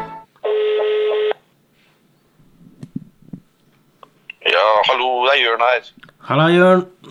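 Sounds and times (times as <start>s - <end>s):
steady telephone tone: 0.4s - 1.4s
speech: 4.9s - 7.0s.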